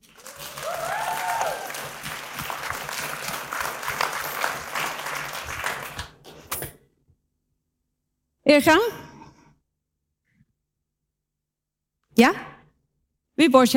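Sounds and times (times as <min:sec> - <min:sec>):
crowd applause: 0:00.0 - 0:06.2
speech: 0:08.5 - 0:09.0, 0:13.4 - 0:13.7.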